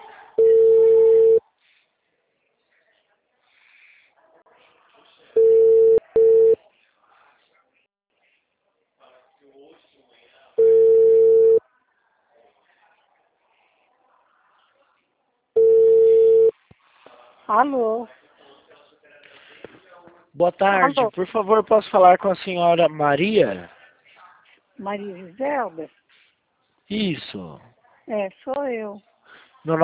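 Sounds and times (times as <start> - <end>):
ringback tones of an outgoing telephone call placed from a computer: 0.4 - 1.4, 5.4 - 6.6, 10.6 - 11.6, 15.6 - 16.5
speech: 17.5 - 18.2, 20.4 - 23.8, 24.8 - 26.0, 26.9 - 29.8.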